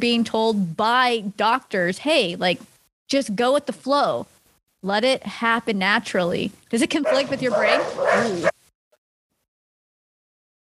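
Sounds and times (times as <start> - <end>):
speech: 0.0 - 8.6
single sharp dog bark: 7.0 - 8.6.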